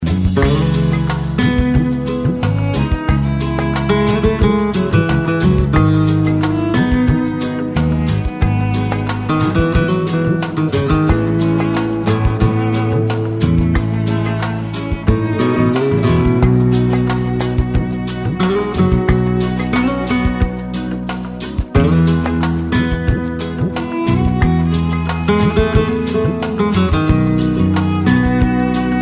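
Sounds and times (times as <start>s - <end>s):
light Hispanic guitar: 0.0s - 29.0s.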